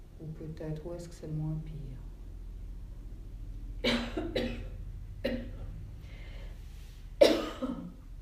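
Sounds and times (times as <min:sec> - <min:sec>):
speech: 0:00.3 - 0:02.1, 0:04.1 - 0:04.6
coughing: 0:03.8 - 0:05.7, 0:07.2 - 0:08.0.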